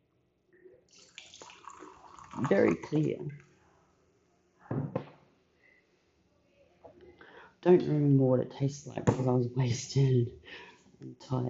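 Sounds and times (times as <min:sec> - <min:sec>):
champagne poured into a glass: 0:00.9 - 0:03.1
speech: 0:02.4 - 0:03.4, 0:07.6 - 0:11.4.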